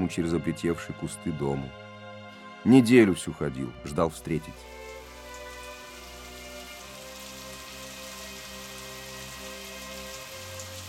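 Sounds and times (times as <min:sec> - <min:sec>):
speech: 0:00.0 - 0:01.8, 0:02.6 - 0:04.8
steady rain pouring down: 0:04.4 - 0:10.8.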